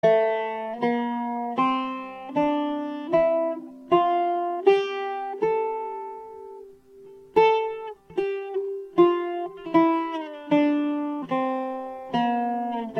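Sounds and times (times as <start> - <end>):
buzuq playing maqam bayati: 0.0 - 12.9.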